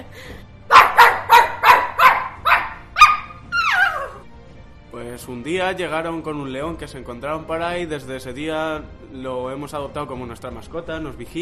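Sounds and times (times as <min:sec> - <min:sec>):
dog barking: 0:00.7 - 0:04.2
speech: 0:05.2 - 0:11.4.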